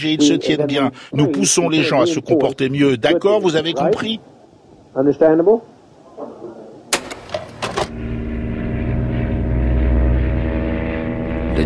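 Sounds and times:
speech: 0.0s - 4.3s, 5.0s - 6.3s
sharp clicks: 6.9s - 8.0s
small propeller plane engine taking off from Georgetown, Guyana: 7.0s - 11.6s.

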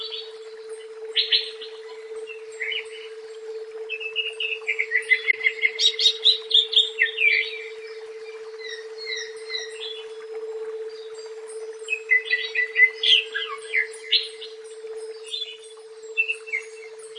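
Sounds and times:
continuous hum: 0.0s - 17.1s
leafbird singing sharp chirps whistles and chattering notes: 0.0s - 17.1s.

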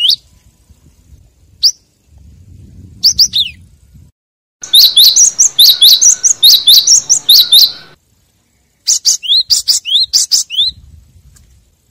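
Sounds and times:
lovebird chirping as a trapping lure: 4.6s - 10.8s.

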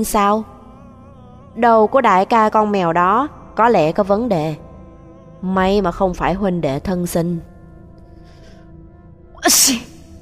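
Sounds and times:
speech: 0.0s - 0.5s, 1.6s - 4.6s, 5.4s - 7.5s, 9.4s - 9.9s
person sneezing: 9.4s - 10.0s.

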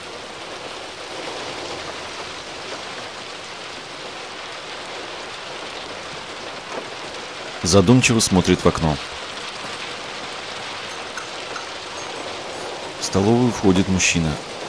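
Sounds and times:
rain falling on a balcony: 0.0s - 14.6s
speech: 7.6s - 9.2s, 13.1s - 14.5s.

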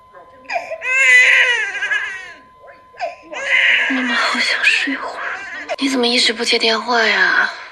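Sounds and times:
newborn baby crying: 0.5s - 2.4s, 3.0s - 4.2s
speech: 3.9s - 5.2s, 5.8s - 7.6s.

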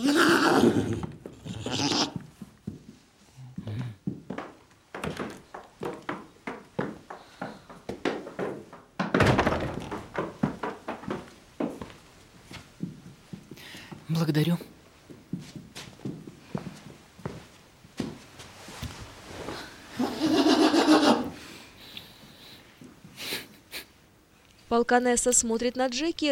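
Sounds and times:
speech: 0.0s - 1.2s, 14.2s - 14.7s, 24.8s - 26.3s
hoof steps of a small horse walking around a room: 0.6s - 21.5s.

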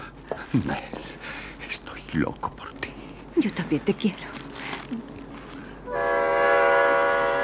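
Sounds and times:
low rumbling noise at a train station: 0.0s - 7.4s
speech: 0.5s - 1.0s, 1.7s - 2.8s, 3.4s - 5.1s
passenger train multi-toned horn blast at a station: 5.9s - 7.4s.

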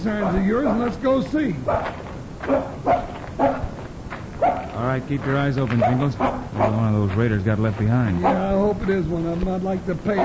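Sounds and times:
speech: 0.0s - 3.6s, 4.8s - 10.2s
dog barking at something in bushes: 0.0s - 3.8s, 4.4s - 4.9s, 5.7s - 6.9s, 8.1s - 8.7s, 10.0s - 10.2s
low hiss: 0.0s - 10.2s.

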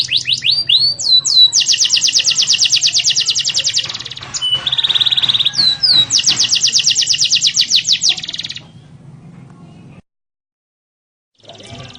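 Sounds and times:
canary song with slurred whistles and rolling trill: 0.0s - 9.0s, 11.4s - 11.9s.

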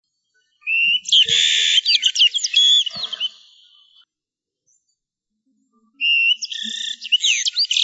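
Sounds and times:
bird giving rapid high chirps and sweeping whistled notes: 0.6s - 3.6s, 6.0s - 7.8s.

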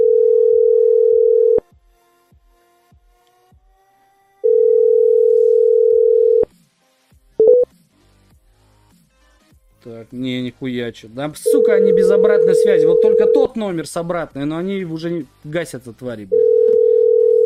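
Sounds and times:
telephone dial tone: 0.0s - 1.6s, 4.4s - 6.5s, 11.5s - 13.5s, 16.3s - 17.4s
speech: 9.9s - 16.4s.

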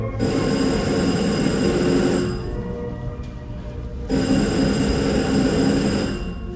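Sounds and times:
telephone ringing in a radio drama: 0.2s - 2.9s, 4.1s - 6.5s.

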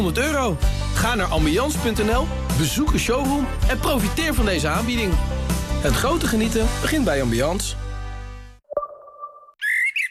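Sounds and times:
speech: 0.0s - 7.8s
blackbird singing: 9.6s - 10.1s.

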